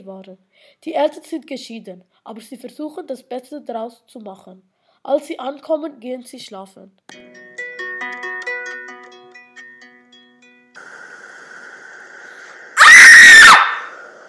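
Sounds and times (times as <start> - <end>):
speech: 0.0 - 7.4
girl screaming: 12.8 - 14.0.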